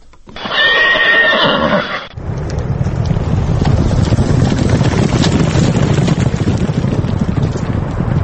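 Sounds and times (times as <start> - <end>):
horse whinny at a horse race with Tajik and English breeds: 0.4 - 2.2
dense steady rumbling wash of noise: 2.1 - 8.2.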